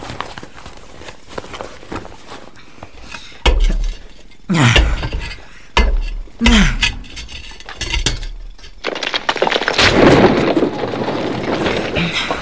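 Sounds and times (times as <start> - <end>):
pickaxe breaking loose stones out of a wall: 3.4 - 12.4.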